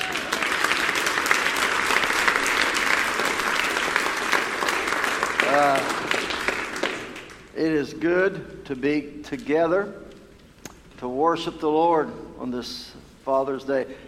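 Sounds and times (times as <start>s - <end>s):
audience applauding: 0.0s - 7.5s
speech: 7.8s - 10.1s, 11.0s - 14.0s.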